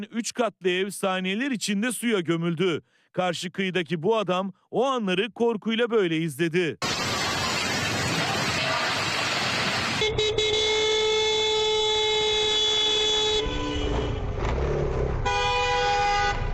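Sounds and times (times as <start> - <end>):
speech: 0.0 - 6.9
city road traffic roaring: 6.8 - 16.5
motorcycle horn honking at a bus on a city road: 10.0 - 14.3, 15.2 - 16.5.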